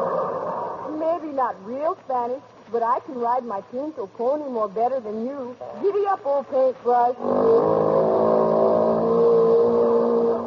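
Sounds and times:
speech: 0:01.2 - 0:07.8
outboard motor engine revving: 0:07.3 - 0:10.4.

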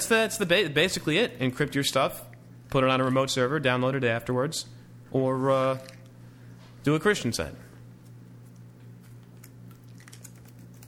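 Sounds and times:
low electrical hum: 0:00.0 - 0:10.8
speech: 0:00.1 - 0:06.0, 0:06.8 - 0:07.6
keyboard typing: 0:09.7 - 0:10.8.

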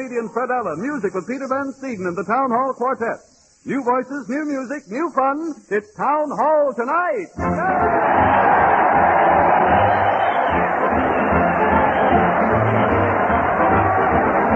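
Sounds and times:
speech: 0:00.0 - 0:08.7
crowd cheering: 0:07.4 - 0:14.5.

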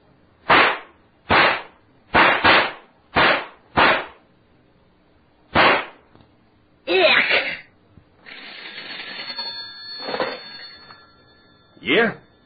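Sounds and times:
gunshots fired at a rattlesnake: 0:00.4 - 0:04.2, 0:05.5 - 0:06.0
speech: 0:11.8 - 0:12.2.

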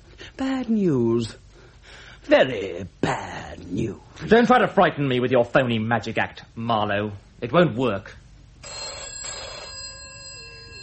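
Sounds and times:
speech: 0:00.4 - 0:01.4, 0:02.2 - 0:08.8
telephone bell ringing with bright metallic jangle: 0:08.6 - 0:10.8.

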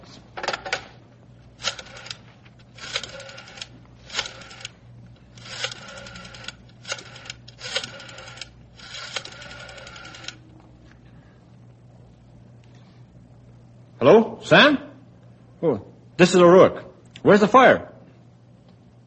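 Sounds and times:
faint steady hum: 0:00.0 - 0:19.0
telephone rotary dial whirring: 0:01.5 - 0:10.6
speech: 0:14.0 - 0:14.8, 0:15.6 - 0:17.9.

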